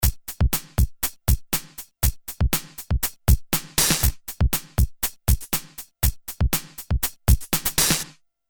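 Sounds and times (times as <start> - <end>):
drum loop through a JFET saturator: 0.0 - 8.2.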